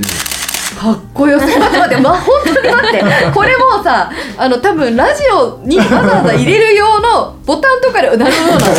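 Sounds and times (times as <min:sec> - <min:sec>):
film SLR camera shutter clicking: 0:00.0 - 0:00.8
speech: 0:00.0 - 0:08.7
laughter: 0:01.4 - 0:03.8, 0:05.7 - 0:06.6, 0:08.2 - 0:08.7.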